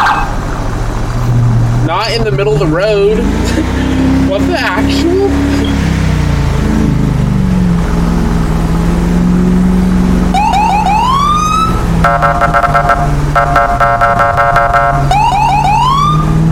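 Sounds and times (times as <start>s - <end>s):
steady engine rumble: 0.0s - 16.4s
speech: 2.0s - 5.6s, 12.1s - 12.6s
loud emergency vehicle siren whooping and wailing: 9.7s - 16.4s.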